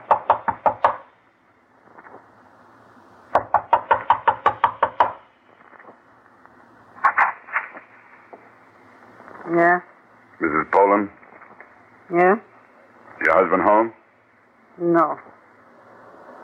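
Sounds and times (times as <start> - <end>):
firm knocking on the door of a home: 0.0 - 1.0, 3.4 - 5.2
faint hum: 0.0 - 16.4
speech: 9.5 - 11.2, 12.1 - 12.5, 13.3 - 14.0, 14.8 - 15.3.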